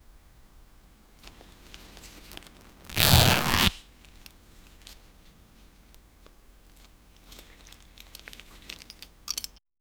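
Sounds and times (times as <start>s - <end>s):
leather jeans belt bursting: 2.6s - 3.8s.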